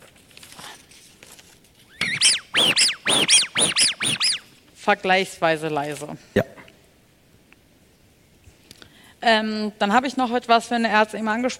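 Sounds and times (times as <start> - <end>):
rustling: 0.0 - 4.8
rubber duck toy squeaking: 1.9 - 4.5
speech: 4.9 - 6.6, 9.2 - 11.5.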